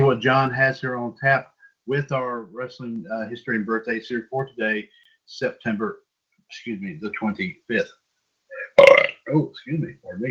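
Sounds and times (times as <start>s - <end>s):
speech: 0.1s - 10.2s
person belching: 8.6s - 9.4s.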